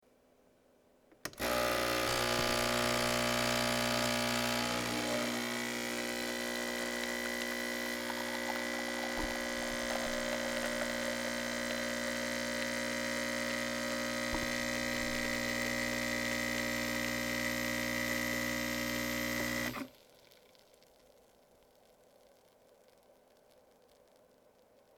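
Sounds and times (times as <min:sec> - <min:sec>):
espresso machine: 0:01.3 - 0:19.9.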